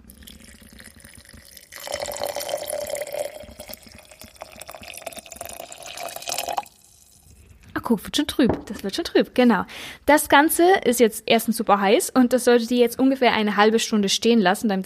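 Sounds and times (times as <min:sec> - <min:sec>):
hot water poured over chestnuts into a glass jar: 0:00.0 - 0:07.7
speech: 0:07.9 - 0:14.8.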